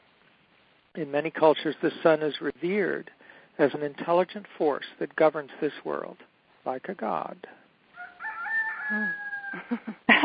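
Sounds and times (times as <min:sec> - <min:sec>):
speech: 0:01.0 - 0:07.6, 0:08.9 - 0:10.2
rooster crowing: 0:07.9 - 0:09.9.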